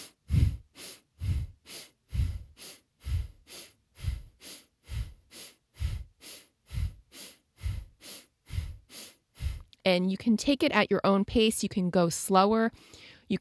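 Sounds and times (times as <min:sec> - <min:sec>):
rapid Breath of Fire breathing in and out through nose: 0:00.0 - 0:09.8, 0:12.8 - 0:13.3
speech: 0:09.8 - 0:13.3.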